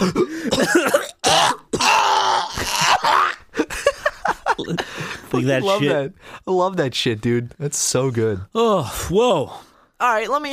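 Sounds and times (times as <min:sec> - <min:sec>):
person in a harsh raspy coughing fit: 0:00.0 - 0:02.0
person groaning with strain: 0:00.0 - 0:03.4
laughter: 0:02.6 - 0:06.0
speech: 0:05.4 - 0:10.5.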